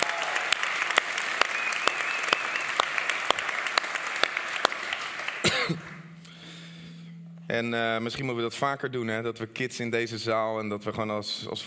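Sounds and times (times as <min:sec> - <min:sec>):
room full of people applauding: 0:00.0 - 0:06.0
speech: 0:05.7 - 0:06.0, 0:07.5 - 0:11.6.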